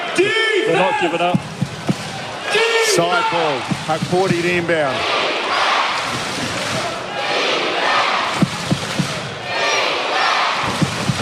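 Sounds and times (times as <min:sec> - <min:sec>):
basketball arena crowd roaring: 0:00.0 - 0:11.2
speech: 0:00.2 - 0:01.6, 0:02.5 - 0:05.2
sharp thumps: 0:01.3 - 0:02.3, 0:03.6 - 0:04.7, 0:08.3 - 0:09.3, 0:10.6 - 0:11.2.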